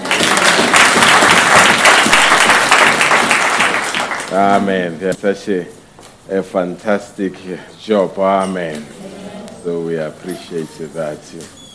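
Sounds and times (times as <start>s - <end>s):
crowd applauding for the musicians: 0.0s - 4.5s
speech: 4.4s - 11.6s.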